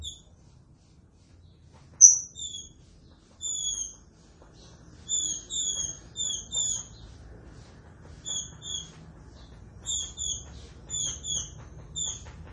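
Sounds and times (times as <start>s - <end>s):
green-winged saltator whistled song: 2.0s - 2.8s, 3.4s - 4.0s, 5.1s - 7.0s, 8.2s - 8.9s, 9.8s - 12.3s.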